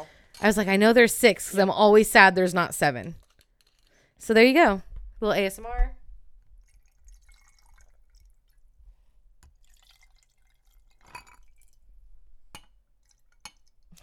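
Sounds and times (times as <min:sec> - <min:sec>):
speech: 0:00.0 - 0:03.2, 0:04.2 - 0:06.0
small clinks: 0:03.2 - 0:04.2
liquid pouring: 0:06.4 - 0:12.0, 0:12.6 - 0:14.0.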